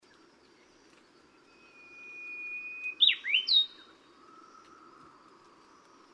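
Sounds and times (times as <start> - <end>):
brownish-flanked bush warbler singing at Yushan: 0.1 - 4.0.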